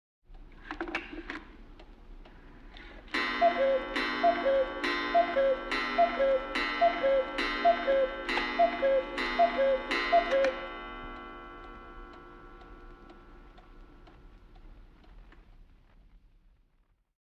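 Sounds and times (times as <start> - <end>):
cuckoo clock: 2.3 - 15.2.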